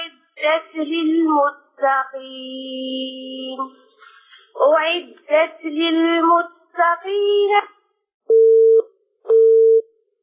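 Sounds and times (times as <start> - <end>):
speech: 0.5 - 7.8
telephone busy signal after a call disconnects: 8.3 - 9.8.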